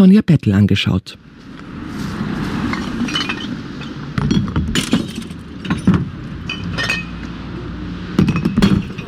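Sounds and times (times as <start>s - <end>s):
speech: 0.0s - 1.5s
glass bottles and preserving jars dropped into a glass recycling container: 2.7s - 7.3s, 8.2s - 9.0s.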